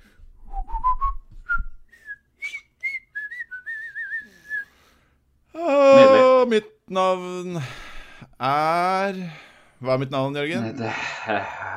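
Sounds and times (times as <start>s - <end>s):
person whistling a short wavering melody: 0.4s - 4.7s
speech: 6.5s - 7.8s, 8.4s - 11.7s.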